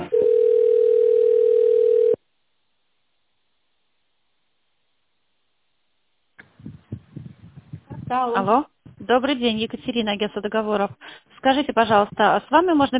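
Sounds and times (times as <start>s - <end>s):
steady sustained telephone tone while a call is connected: 0.1s - 2.2s
speech: 8.1s - 12.9s.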